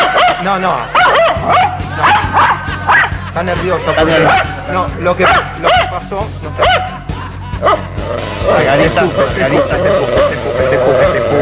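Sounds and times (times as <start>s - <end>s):
female dog barking in high yelping barks: 0.0s - 3.0s, 5.2s - 5.9s, 6.6s - 6.9s
speech: 0.4s - 2.6s, 3.4s - 7.0s, 7.6s - 11.3s
laughter: 1.4s - 11.3s.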